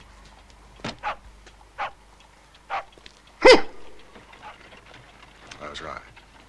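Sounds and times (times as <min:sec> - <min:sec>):
curly-haired spaniel barking: 0:01.0 - 0:01.2, 0:01.8 - 0:02.0, 0:02.7 - 0:04.6.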